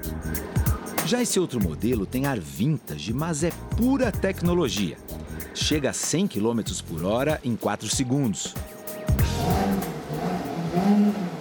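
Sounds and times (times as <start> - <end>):
speech: 1.1 - 8.7, 10.8 - 11.2
vintage-styled sports car revving on its normal exhaust setting: 9.2 - 11.3.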